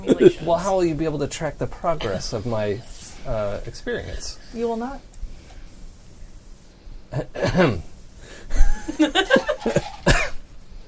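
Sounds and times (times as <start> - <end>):
speech: 0.0 - 5.1, 7.1 - 7.9, 8.5 - 10.2
person coughing harshly from an itchy throat: 7.2 - 7.9, 9.7 - 10.4.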